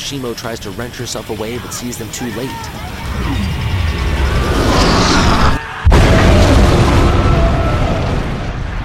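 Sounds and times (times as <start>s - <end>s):
speech: 0.1s - 3.5s
torpedo exploding against a warship's hull amidships: 3.0s - 8.8s.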